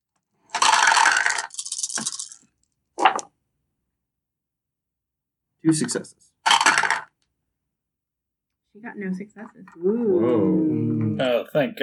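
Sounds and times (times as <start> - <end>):
dice clattering across a hard surface: 0.4 - 3.3, 6.5 - 7.2
speech: 5.6 - 6.4, 8.8 - 11.8.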